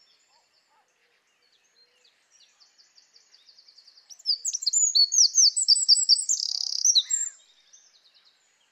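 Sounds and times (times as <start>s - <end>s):
Eurasian wren singing high notes and chattering trills: 4.1s - 7.4s.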